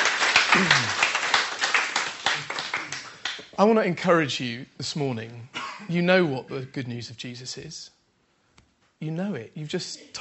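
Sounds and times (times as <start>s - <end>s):
crowd applauding: 0.0s - 3.6s
faint voice or cheer: 0.4s - 1.2s
speech: 3.6s - 8.0s, 9.0s - 10.1s.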